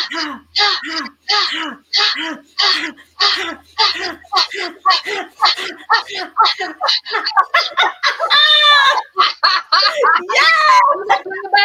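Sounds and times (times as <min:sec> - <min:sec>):
forceful ha exhalations from a breathing exercise: 0:00.2 - 0:07.9
laughter: 0:02.7 - 0:11.5.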